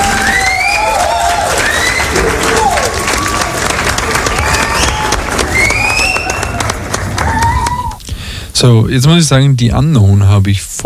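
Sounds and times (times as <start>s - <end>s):
whoops cheers and whistles: 0.0s - 3.5s, 4.3s - 8.0s
large crowd applauding: 0.0s - 8.3s
speech: 8.6s - 10.8s.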